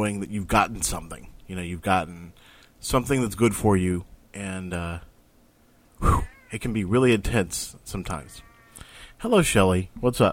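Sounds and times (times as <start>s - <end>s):
speech: 0.0s - 5.1s, 6.0s - 8.5s, 9.2s - 10.3s
cat meowing: 6.2s - 6.6s, 8.3s - 8.9s.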